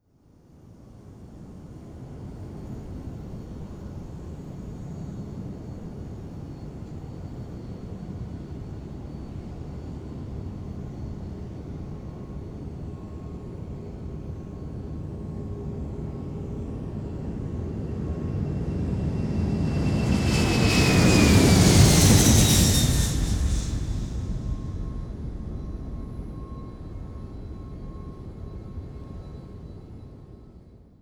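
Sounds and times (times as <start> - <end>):
jumbo jet taking off: 15.1 - 30.3.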